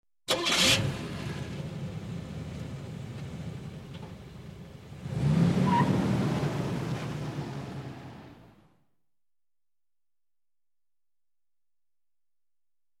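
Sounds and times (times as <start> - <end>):
car engine starting: 0.3 - 8.7.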